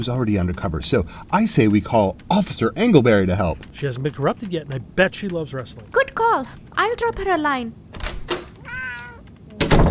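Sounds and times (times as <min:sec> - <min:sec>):
speech: 0:00.0 - 0:07.9
cat meowing: 0:08.5 - 0:09.3.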